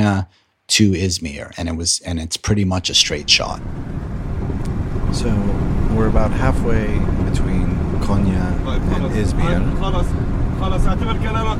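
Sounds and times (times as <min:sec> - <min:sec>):
speech: 0:00.0 - 0:11.5
car road and engine rumble driving on highway: 0:03.1 - 0:11.5.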